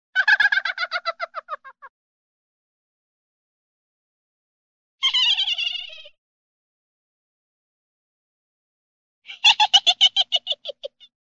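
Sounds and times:
little girl giving a short laugh: 0.2 - 1.9, 5.0 - 6.1, 9.3 - 11.1.

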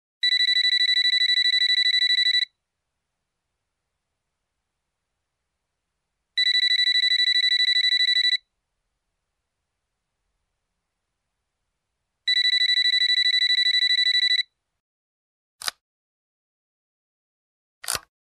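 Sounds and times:
cordless telephone ringing: 0.2 - 2.5, 6.4 - 8.4, 12.3 - 14.5.

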